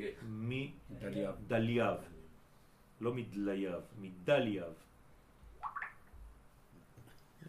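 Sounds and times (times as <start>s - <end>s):
speech: 0.0s - 2.2s, 3.0s - 4.9s
low hum: 0.0s - 7.4s
water drips: 5.6s - 6.2s.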